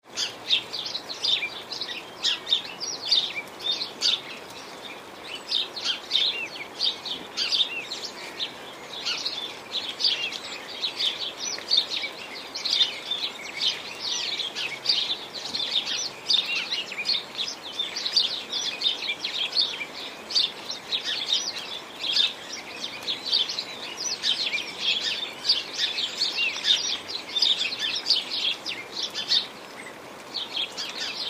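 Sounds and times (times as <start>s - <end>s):
rain: 0.0s - 31.2s
sparrows chirping in rain: 0.2s - 31.2s.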